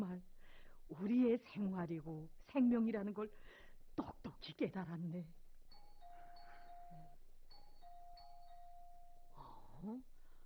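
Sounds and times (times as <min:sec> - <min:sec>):
speech: 0:00.9 - 0:05.4, 0:09.8 - 0:10.1
electronic doorbell ding-dong chime: 0:05.7 - 0:09.4.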